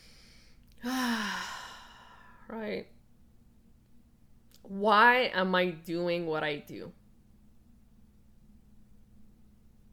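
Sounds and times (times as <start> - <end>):
long voiced sigh releasing a deep breath: 0.0 - 2.4
speech: 2.5 - 3.0, 4.6 - 7.0.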